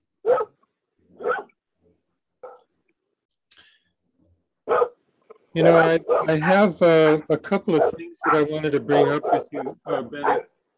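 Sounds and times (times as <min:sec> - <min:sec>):
neighbors' dogs barking excitedly: 0:00.2 - 0:00.6, 0:01.2 - 0:01.6, 0:02.4 - 0:02.7, 0:04.7 - 0:05.0, 0:06.0 - 0:06.7, 0:07.7 - 0:10.6
speech: 0:05.6 - 0:10.5.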